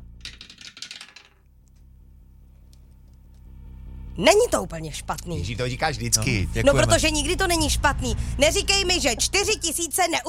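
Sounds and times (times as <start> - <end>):
die rolled for a prize game rattling: 0.0 - 1.5
low hum: 0.0 - 10.2
speech: 4.2 - 10.2.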